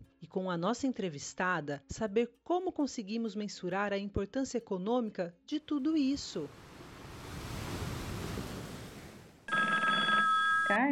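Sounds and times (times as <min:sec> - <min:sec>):
speech: 0:00.3 - 0:06.7
surf washing: 0:06.1 - 0:09.5
electronic telephone ringing: 0:09.5 - 0:10.9.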